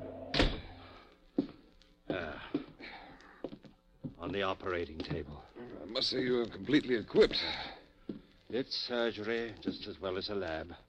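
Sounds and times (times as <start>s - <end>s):
door kicked shut: 0.3s - 0.8s
speech: 4.3s - 7.7s, 8.5s - 10.8s.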